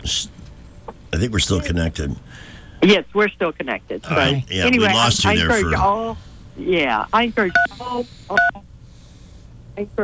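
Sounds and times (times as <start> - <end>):
speech: 1.1 - 8.7, 9.8 - 10.0
telephone dial pad keypad beeps during a call: 8.4 - 8.6.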